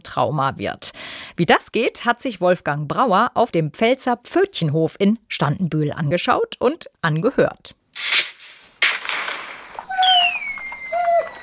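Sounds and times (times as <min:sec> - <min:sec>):
speech: 0:00.2 - 0:08.1
recorded firework bangs played quietly: 0:08.0 - 0:10.7
high whistling firework tones: 0:09.7 - 0:11.4.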